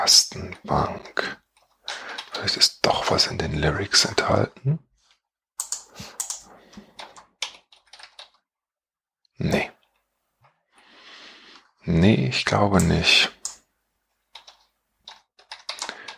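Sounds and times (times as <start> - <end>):
speech: 0.1 - 1.2, 2.4 - 4.9, 9.4 - 9.7, 11.9 - 13.4
typing on mobile phone keys: 5.6 - 8.4, 14.3 - 16.1.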